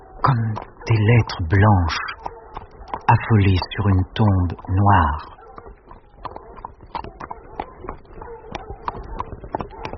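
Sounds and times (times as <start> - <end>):
horses' hooves clip-clopping on a hard surface: 0.0 - 0.9, 1.9 - 9.9
speech: 0.3 - 2.1, 3.1 - 5.4.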